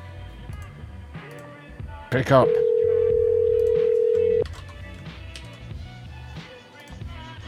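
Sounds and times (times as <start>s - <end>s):
speech: 2.1s - 2.6s
answering machine long steady mid-pitched electronic beep: 2.4s - 4.4s.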